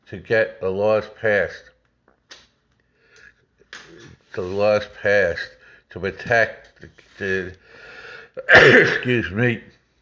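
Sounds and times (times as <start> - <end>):
speech: 0.1 - 1.7, 4.4 - 7.6, 8.4 - 9.8
person sneezing in an allergy attack: 8.4 - 9.2.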